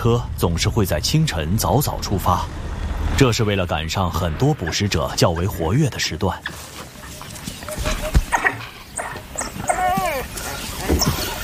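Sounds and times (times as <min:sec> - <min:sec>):
speech: 0:00.0 - 0:06.9
rustling outdoor background: 0:04.1 - 0:11.4
African wild dog calling with high squeaky twittering calls: 0:08.3 - 0:11.4.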